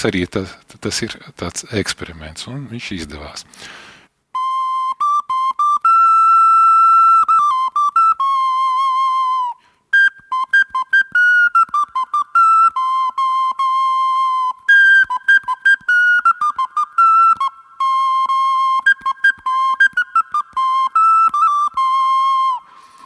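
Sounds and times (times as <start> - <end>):
speech: 0.0 - 3.9
homemade gourd whistle playing a lively folk tune: 4.3 - 23.0.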